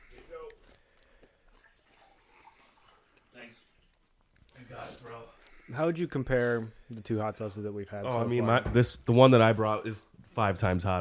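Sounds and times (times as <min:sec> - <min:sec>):
water poured from a pitcher in a quiet trickle: 0:01.4 - 0:04.4
speech: 0:05.7 - 0:10.9.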